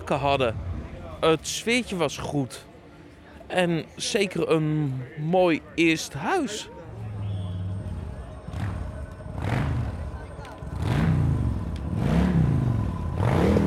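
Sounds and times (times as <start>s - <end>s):
speech: 0.1s - 2.7s, 3.5s - 6.8s
motorcycle engine revving while driving across the grounds: 7.3s - 13.6s.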